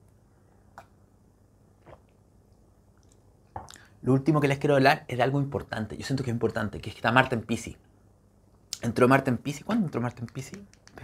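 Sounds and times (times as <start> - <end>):
sipping water: 1.8 - 2.2
speech: 4.0 - 7.9, 8.8 - 11.0.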